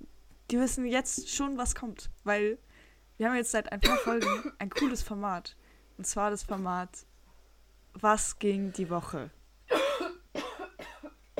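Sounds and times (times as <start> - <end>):
speech: 0.5 - 7.1, 8.0 - 9.4
coughing: 3.8 - 5.1, 9.7 - 11.3.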